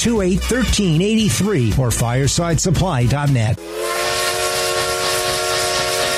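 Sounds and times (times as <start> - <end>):
speech: 0.0 - 4.4
steam train whistle blowing in one long loud sustained tone: 3.6 - 6.1.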